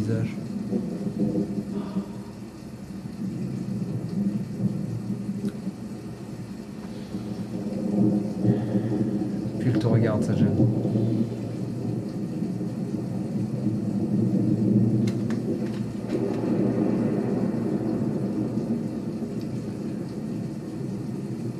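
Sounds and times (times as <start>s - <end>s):
speech: 0.0s - 2.0s
steady hissing rain: 0.0s - 21.5s
thunder rumble: 0.0s - 21.5s.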